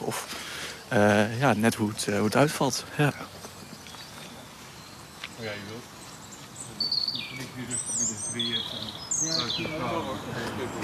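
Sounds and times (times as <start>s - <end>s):
speech: 0.1s - 0.3s, 0.9s - 3.4s, 5.4s - 6.0s, 7.6s - 10.8s
middle spotted woodpecker nasal call: 2.3s - 10.4s
higher chirps and whistles of other birds: 6.8s - 9.9s.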